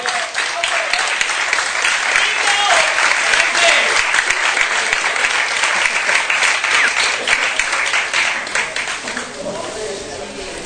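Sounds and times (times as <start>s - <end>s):
live audience applause: 0.0s - 9.8s.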